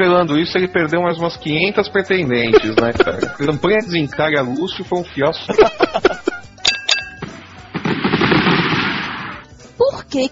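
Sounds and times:
speech: 0:00.0 - 0:06.2, 0:10.1 - 0:10.3
laughter: 0:02.4 - 0:04.4, 0:05.3 - 0:06.6
fireworks banging and crackling: 0:07.2 - 0:09.5.

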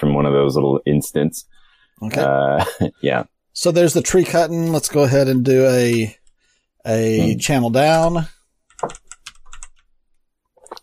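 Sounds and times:
speech: 0:00.2 - 0:06.2, 0:06.8 - 0:09.0
laughter: 0:02.2 - 0:03.1
keystrokes on a computer keyboard: 0:08.7 - 0:09.9.

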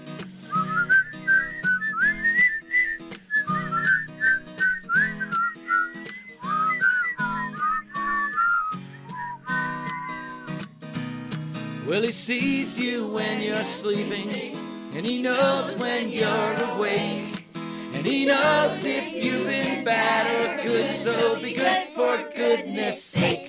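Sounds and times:
person whistling a bright bouncy holiday tune: 0:00.4 - 0:10.6
speech: 0:11.9 - 0:17.3, 0:18.0 - 0:23.4.

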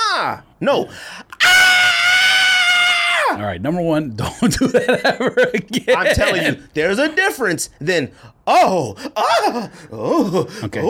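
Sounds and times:
speech: 0:00.2 - 0:01.6, 0:03.4 - 0:10.8
quiet breath: 0:00.9 - 0:01.3, 0:08.2 - 0:08.4
person imitating plane passengers screaming: 0:01.4 - 0:03.4
laughter: 0:04.2 - 0:06.7.

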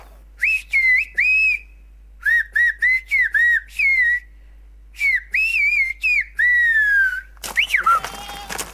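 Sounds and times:
person whistling in a whistled language: 0:00.4 - 0:04.3, 0:05.0 - 0:08.0.

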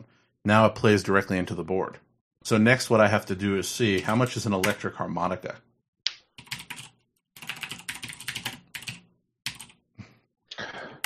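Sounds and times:
speech: 0:00.4 - 0:05.7
typing on a computer keyboard: 0:06.4 - 0:09.8.

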